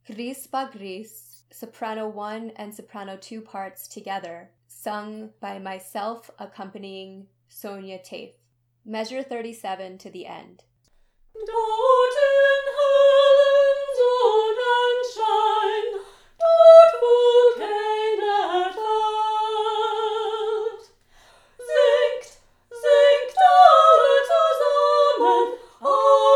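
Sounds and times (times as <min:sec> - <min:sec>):
first and second soprano voices singing: 0:11.4 - 0:26.3.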